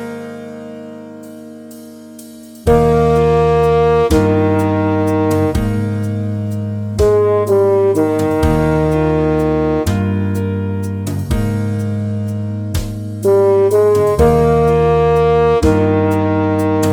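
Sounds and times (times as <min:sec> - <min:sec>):
high horn: 0:02.7 - 0:12.2, 0:13.2 - 0:16.9.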